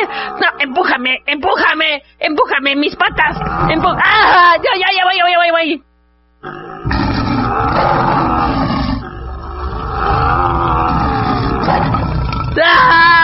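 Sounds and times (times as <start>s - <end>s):
speech: 0.0s - 8.2s, 12.6s - 13.2s
tiger roaring: 3.1s - 4.6s, 6.4s - 13.2s.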